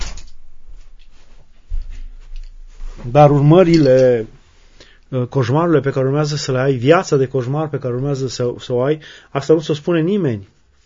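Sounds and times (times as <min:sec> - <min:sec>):
faint rustling and shuffling: 0:00.3 - 0:09.0, 0:09.6 - 0:10.8
speech: 0:03.1 - 0:04.4, 0:05.1 - 0:10.6.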